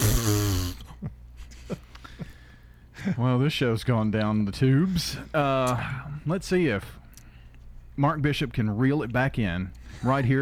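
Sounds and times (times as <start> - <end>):
voice blowing a buzzy fart-like raspberry: 0.0 - 0.9
speech: 3.1 - 7.0, 8.0 - 10.4.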